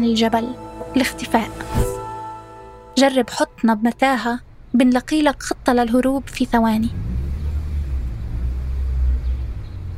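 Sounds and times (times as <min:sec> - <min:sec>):
speech: 0:00.0 - 0:01.9, 0:03.0 - 0:07.1
taxi engine rumbling: 0:05.5 - 0:09.9.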